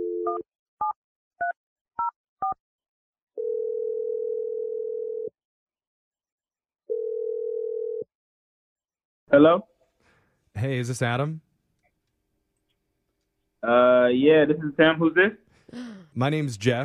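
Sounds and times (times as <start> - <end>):
long steady low telephone tones: 3.4 - 5.3, 6.9 - 8.1
speech: 9.3 - 9.7, 10.6 - 11.5, 13.6 - 16.8.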